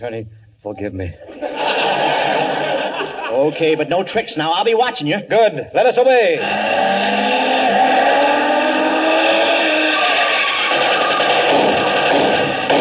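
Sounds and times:
speech: 0:00.0 - 0:01.7, 0:03.3 - 0:07.2
laughter: 0:01.2 - 0:03.9, 0:06.3 - 0:12.7
car engine roaring as it accelerates: 0:06.4 - 0:12.6.

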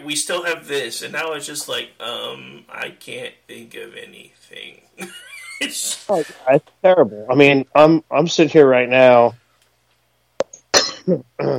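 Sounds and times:
speech: 0:00.0 - 0:09.4, 0:11.1 - 0:11.5
person with allergies clearing throat: 0:10.7 - 0:11.5
person with allergies coughing: 0:10.7 - 0:11.5.

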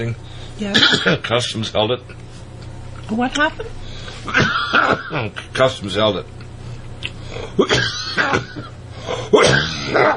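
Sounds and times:
speech: 0:00.0 - 0:02.2, 0:03.1 - 0:06.4, 0:07.0 - 0:10.1
low steady hum: 0:00.0 - 0:10.1
person coughing: 0:00.7 - 0:01.2, 0:04.2 - 0:05.4, 0:07.4 - 0:10.1.

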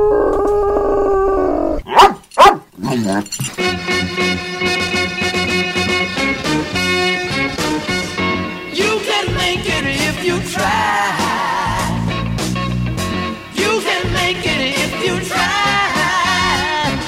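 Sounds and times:
dog whining: 0:00.0 - 0:03.5
dog barking sharply: 0:01.9 - 0:03.2
full band music: 0:03.4 - 0:17.0.

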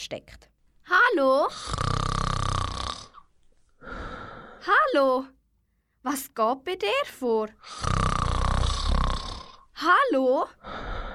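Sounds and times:
speech: 0:00.0 - 0:02.0, 0:04.6 - 0:05.4, 0:06.0 - 0:08.0, 0:09.8 - 0:10.9
loud rattling snore: 0:01.5 - 0:04.6, 0:07.6 - 0:09.7.

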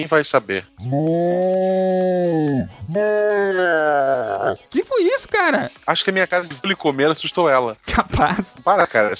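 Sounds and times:
speech: 0:00.0 - 0:09.1
cow mooing: 0:00.8 - 0:04.7.

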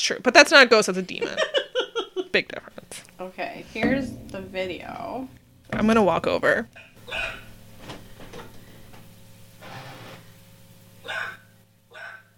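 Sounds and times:
speech: 0:00.0 - 0:01.6, 0:02.3 - 0:07.4
steady low electrical hum: 0:00.0 - 0:12.3
laughter: 0:01.1 - 0:02.4
agitated dog barking: 0:11.0 - 0:12.3.

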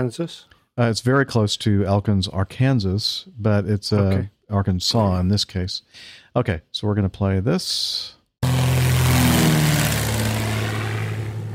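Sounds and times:
speech: 0:00.0 - 0:08.2
propeller plane taking off from a highway after an emergency landing: 0:08.4 - 0:11.5.

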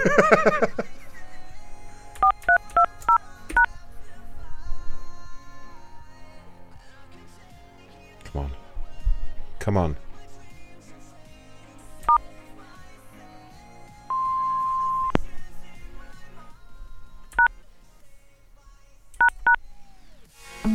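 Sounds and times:
speech: 0:00.0 - 0:00.8
laughter: 0:00.0 - 0:01.2
quiet music: 0:00.0 - 0:20.7
phone keypad tones entering remote access code: 0:02.2 - 0:03.7, 0:14.1 - 0:15.2.

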